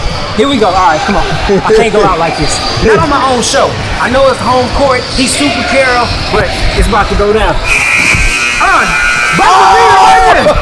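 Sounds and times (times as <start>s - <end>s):
speech: 0.4s - 10.6s
electric buzzer droning: 7.7s - 10.3s.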